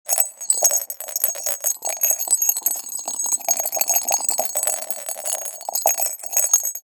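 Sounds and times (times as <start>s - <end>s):
thin glass sphere with a bell inside being shaken: 0.1s - 6.9s.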